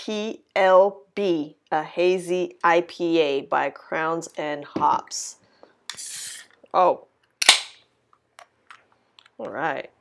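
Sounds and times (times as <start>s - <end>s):
speech: 0.0s - 7.1s, 9.4s - 9.9s
beer can cracking open: 7.4s - 7.8s.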